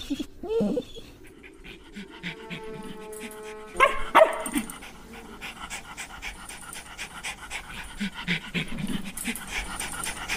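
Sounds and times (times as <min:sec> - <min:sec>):
wounded dog whining: 0:00.0 - 0:04.7
wounded dog panting heavily: 0:00.0 - 0:10.3
wounded dog yelping barks: 0:03.8 - 0:04.7.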